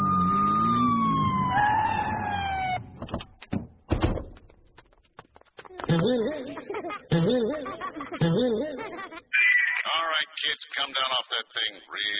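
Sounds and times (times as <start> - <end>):
police car siren wailing: 0.0 - 3.0
door thud: 3.0 - 4.5
laughter: 5.7 - 10.1
speech: 10.6 - 12.1.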